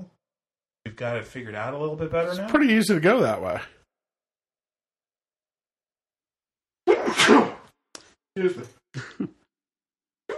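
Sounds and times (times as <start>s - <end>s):
speech: 1.0s - 3.8s, 8.4s - 9.4s
person sneezing: 6.9s - 7.6s.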